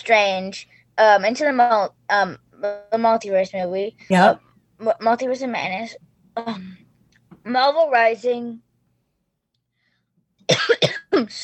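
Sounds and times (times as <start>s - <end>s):
speech: 0.0s - 6.8s, 7.4s - 8.6s, 10.7s - 11.4s
wet coughing from mucus in the throat: 10.5s - 11.3s.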